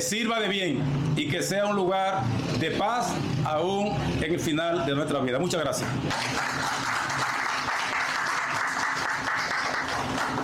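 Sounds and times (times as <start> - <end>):
speech: 0.0 - 7.0
audience applause: 6.1 - 10.4.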